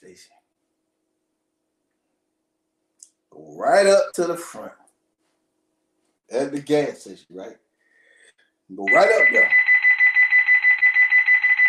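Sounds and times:
speech: 0:00.2 - 0:00.4, 0:03.6 - 0:04.8, 0:06.3 - 0:07.6, 0:08.7 - 0:09.6
shrill electronic alarm beeping: 0:08.8 - 0:11.6.

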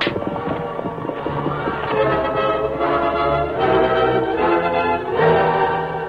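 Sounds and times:
horses whinnying: 0:00.0 - 0:03.2
horses trotting with clip-clop of hooves: 0:00.0 - 0:05.0.

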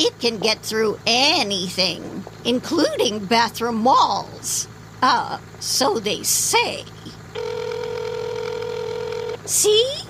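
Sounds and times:
speech: 0:00.0 - 0:07.6, 0:09.5 - 0:10.0
wicker cricket toy telephone ringing: 0:07.4 - 0:09.6.

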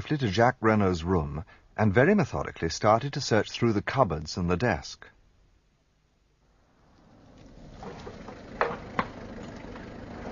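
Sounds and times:
speech: 0:00.1 - 0:05.2
car engine driving up and idling: 0:07.0 - 0:10.3.

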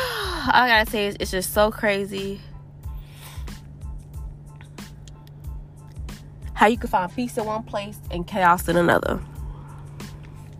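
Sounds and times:
speech: 0:00.4 - 0:02.5, 0:06.6 - 0:09.3
person sniffling: 0:03.0 - 0:03.6.

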